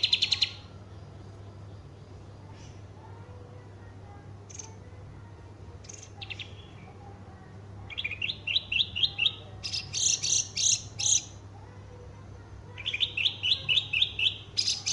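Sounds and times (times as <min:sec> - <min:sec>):
Horsfield's bush lark singing: 0:00.0 - 0:00.7, 0:05.8 - 0:06.9, 0:07.9 - 0:11.4, 0:12.8 - 0:14.9
constant low hum: 0:00.0 - 0:14.9.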